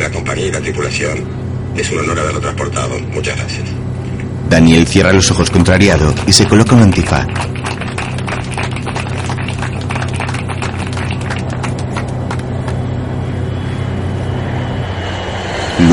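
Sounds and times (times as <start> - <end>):
landing airplane's engines roaring: 0.0 - 15.9
sustained tonal whine of airplane engines: 0.0 - 15.9
speech: 0.4 - 3.8, 4.4 - 7.5
broad rushing noise: 5.1 - 15.9.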